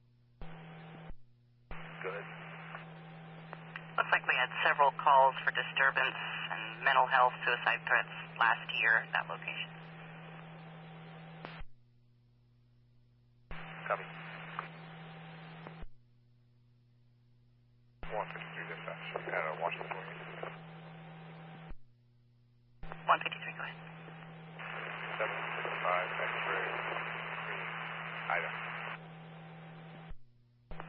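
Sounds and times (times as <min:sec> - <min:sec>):
heavy crackling static over a police radio: 0:01.8 - 0:11.6, 0:13.5 - 0:15.8, 0:18.0 - 0:21.7, 0:22.9 - 0:30.1
garbled unintelligible voices over a police radio: 0:01.9 - 0:02.8, 0:03.7 - 0:09.7, 0:13.6 - 0:14.7, 0:18.0 - 0:20.6, 0:23.0 - 0:23.8, 0:24.6 - 0:29.0
speech: 0:04.1 - 0:09.8, 0:13.9 - 0:14.2.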